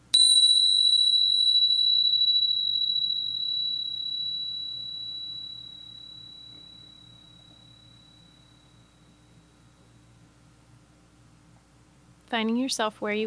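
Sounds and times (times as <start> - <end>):
meditation bell rung to start a guided meditation: 0.0 - 10.0
speech: 12.3 - 13.2.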